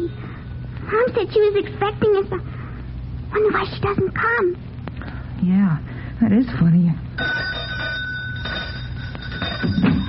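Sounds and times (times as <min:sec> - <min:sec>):
speech: 0:01.0 - 0:02.6, 0:03.3 - 0:04.7, 0:05.4 - 0:07.6
pull doorbell mechanical bell ringing with bright metallic tone: 0:07.2 - 0:10.0.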